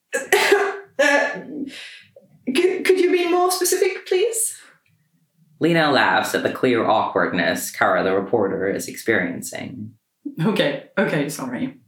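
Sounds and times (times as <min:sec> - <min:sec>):
loud harsh raspy cough: 0:00.2 - 0:01.4
speech: 0:01.4 - 0:02.0, 0:02.6 - 0:04.7, 0:05.6 - 0:11.8.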